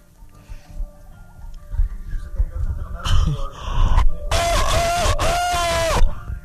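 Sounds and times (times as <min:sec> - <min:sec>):
low noise: 0:00.0 - 0:06.4
brief breathy burst: 0:03.1 - 0:06.1
person imitating a rooster crowing in a contest: 0:04.3 - 0:06.1.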